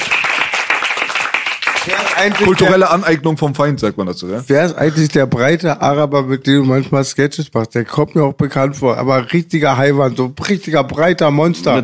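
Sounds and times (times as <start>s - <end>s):
crowd applause: 0.0s - 3.0s
speech: 1.8s - 11.8s.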